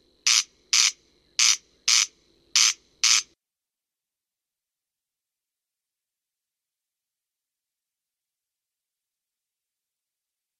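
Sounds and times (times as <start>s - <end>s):
Corn crake harsh ratchety paired notes played back: 0.2s - 3.4s.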